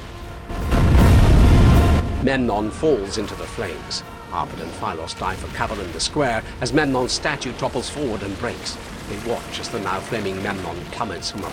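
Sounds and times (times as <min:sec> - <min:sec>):
explosion of ignited powder in a palace: 0:00.5 - 0:03.0
speech: 0:02.2 - 0:11.5.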